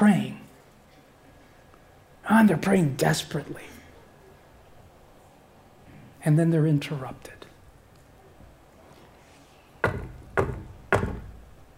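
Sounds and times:
speech: 0.0s - 0.4s, 2.3s - 3.7s, 6.2s - 7.4s
firm knocking on a door: 9.8s - 11.4s.

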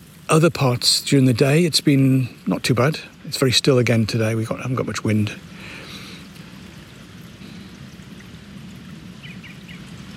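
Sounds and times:
running water: 0.0s - 10.1s
speech: 0.3s - 5.5s
bird chirps: 9.2s - 9.9s.

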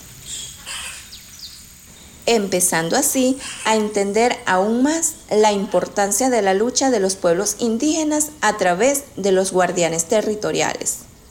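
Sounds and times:
various Amazon rainforest birds calling and chirping: 0.0s - 4.1s
steady hiss: 0.0s - 11.2s
speech: 2.3s - 11.1s.

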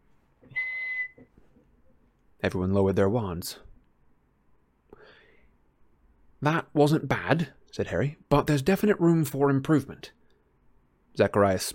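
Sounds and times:
whistle blown hard: 0.4s - 1.3s
speech: 2.4s - 3.7s, 6.4s - 10.2s, 11.2s - 11.7s.

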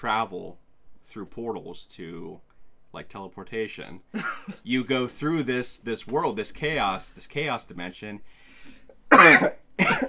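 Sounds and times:
speech: 0.0s - 10.0s
harsh coughs: 4.2s - 4.6s, 9.1s - 10.0s.

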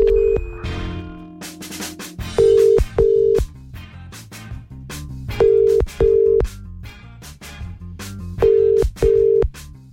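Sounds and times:
double-pulse phone ringback tones on an outgoing call: 0.0s - 0.7s, 2.3s - 3.5s, 5.4s - 6.5s, 8.4s - 9.5s
soft music bed: 0.0s - 4.0s, 5.3s - 6.6s, 7.4s - 9.9s.

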